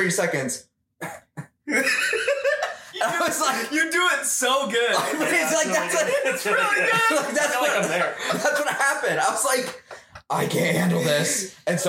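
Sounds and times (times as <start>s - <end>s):
speech: 0.0s - 1.1s, 3.0s - 11.8s
person imitating a weak fake cough: 1.0s - 1.7s
laughter: 1.7s - 11.5s.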